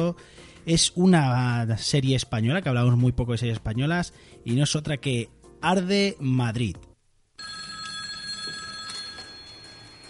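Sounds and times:
speech: 0.0s - 7.5s
telephone bell ringing: 7.4s - 10.0s.

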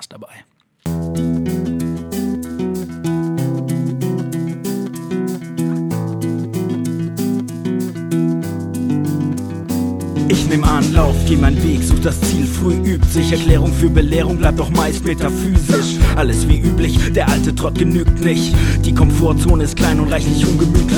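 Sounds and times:
speech: 0.0s - 0.5s, 11.3s - 20.9s
steady drum beat in a self-made song demo intro: 0.9s - 20.9s
bass line in a self-made song demo intro: 10.2s - 20.9s.

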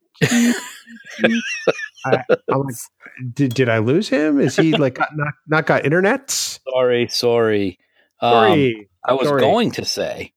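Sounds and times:
laughter: 0.2s - 2.7s, 4.4s - 5.4s
harsh hacking cough: 0.2s - 3.2s
speech: 0.2s - 10.3s.

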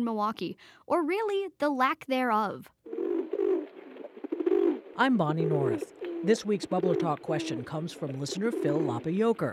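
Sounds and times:
speech: 0.0s - 2.8s, 5.0s - 9.5s
pigeons cooing: 2.9s - 9.5s.

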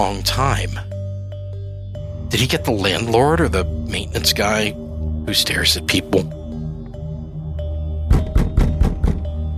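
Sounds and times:
speech: 0.0s - 0.9s, 2.3s - 6.4s
banging heavily on a front door: 8.1s - 9.4s.

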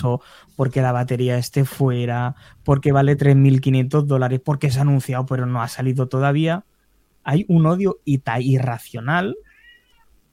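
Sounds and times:
speech: 0.0s - 9.5s
pet cat meowing: 9.4s - 10.2s.

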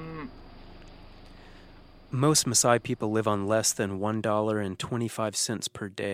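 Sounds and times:
cow mooing: 0.0s - 0.3s
steady low hum: 0.0s - 6.1s
speech: 2.1s - 6.1s.

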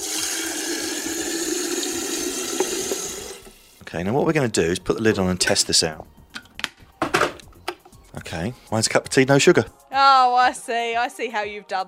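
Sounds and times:
tap water pouring into a metal kettle: 0.0s - 3.8s
speech: 3.9s - 6.2s, 8.3s - 11.8s.

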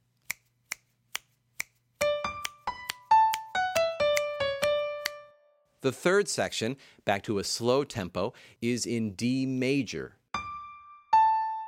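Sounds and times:
crisp finger snaps marking the beats: 0.2s - 5.3s
speech: 5.8s - 10.2s.

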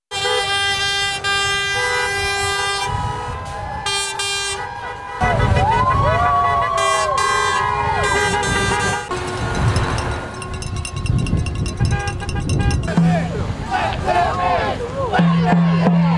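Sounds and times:
truck air horns blaring in a protest convoy in Ottawa Canada: 0.1s - 14.4s
low traffic rumble: 0.1s - 16.1s
sliding wavering tones: 9.1s - 13.0s.

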